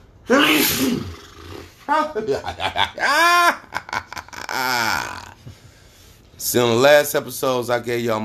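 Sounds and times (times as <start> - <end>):
man sneezing: 0.2 - 1.3
speech: 0.3 - 1.2, 1.9 - 3.8, 4.6 - 5.2, 6.4 - 8.2.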